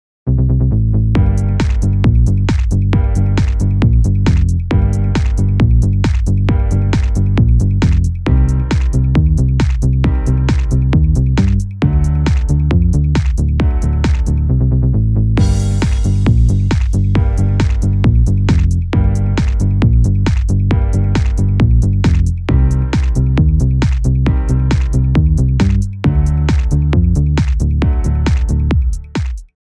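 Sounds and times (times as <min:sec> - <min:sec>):
instrumental music: 0:01.1 - 0:29.5.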